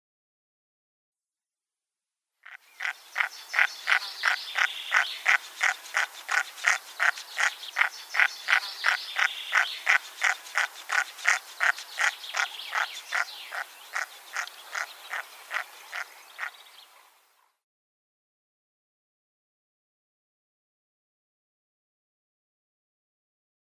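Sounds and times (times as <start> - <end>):
female Red-breasted Merganser: 2.4 - 17.1.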